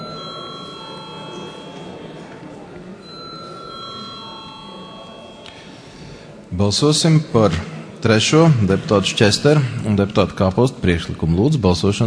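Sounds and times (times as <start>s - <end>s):
electric bell ringing in a parliamentary chamber to call a vote: 0.0s - 6.0s
murmur in a parliamentary chamber: 0.0s - 12.0s
speech: 6.6s - 12.0s.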